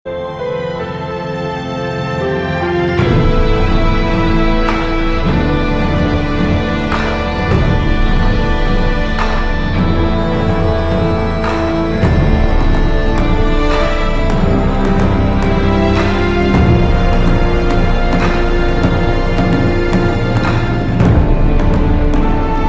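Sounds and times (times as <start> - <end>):
eerie twilight music: 0.1 - 22.6.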